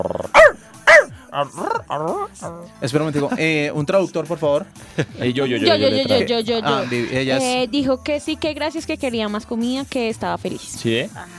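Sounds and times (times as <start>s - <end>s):
dog growling: 0.0s - 2.7s
dog barking: 0.2s - 1.8s
speech: 1.4s - 11.3s.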